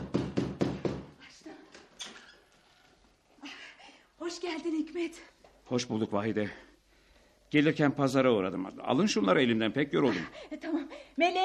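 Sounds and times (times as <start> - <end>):
knocking on a door: 0.0 - 1.1
speech: 4.3 - 6.7, 7.5 - 11.4.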